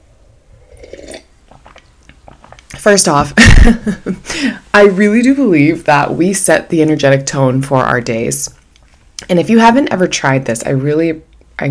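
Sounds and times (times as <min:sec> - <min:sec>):
slurping sip of hot coffee: 0:00.5 - 0:02.8
wet mouth sounds: 0:00.6 - 0:02.8
small clicks of swallowing coffee: 0:01.5 - 0:02.8
speech: 0:02.8 - 0:08.6, 0:09.2 - 0:11.6.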